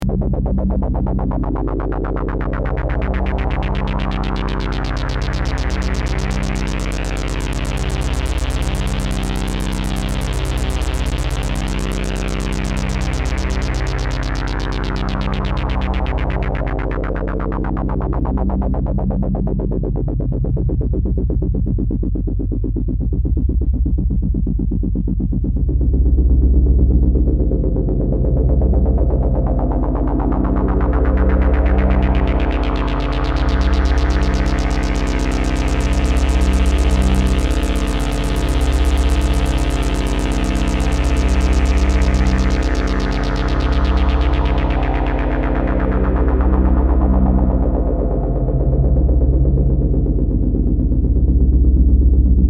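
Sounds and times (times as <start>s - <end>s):
synth with half resonance ADSR and LFO on state variable low-pass filter: 0.0s - 52.4s.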